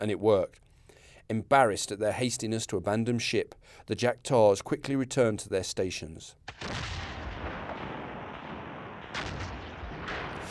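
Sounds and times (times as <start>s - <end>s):
speech: 0.0s - 0.6s, 1.3s - 6.9s
cannon fire in battle at a French fort by the water: 6.5s - 10.4s
sharp blasts in battle: 6.5s - 10.4s.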